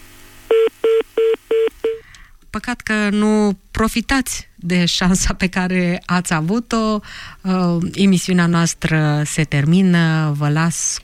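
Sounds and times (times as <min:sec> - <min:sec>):
electronic telephone line beeps during call-in: 0:00.5 - 0:02.0
speech: 0:02.6 - 0:11.0.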